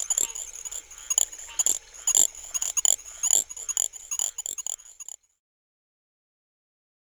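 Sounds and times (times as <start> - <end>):
little grass frog chirping: 0.0 - 5.2.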